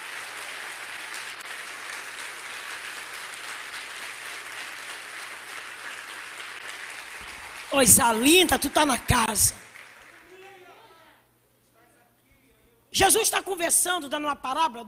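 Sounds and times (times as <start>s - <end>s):
audience applauding at an evening worship service: 0.0s - 10.9s
speech: 7.7s - 9.6s, 13.0s - 14.8s.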